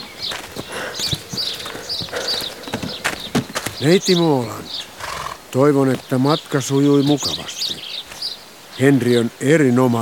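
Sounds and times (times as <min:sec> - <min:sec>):
hooves of a horse pulling a carriage clip-clopping: 0:00.0 - 0:06.2
speech: 0:03.8 - 0:04.6, 0:05.5 - 0:07.6, 0:08.8 - 0:10.0.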